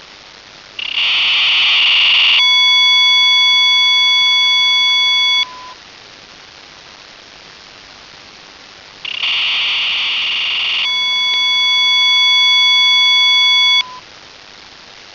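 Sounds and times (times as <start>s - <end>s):
BPSK radio data signal at 1200 baud: 0.8s - 5.8s, 9.0s - 14.1s.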